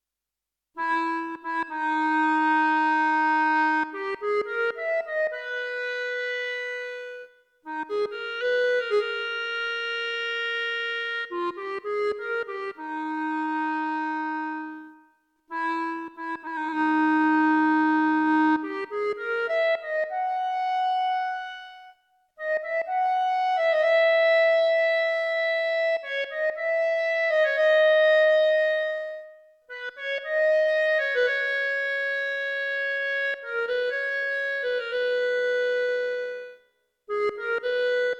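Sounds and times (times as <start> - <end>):
classical clarinet music on an EWI5000 wind controller: 0.8 - 38.1.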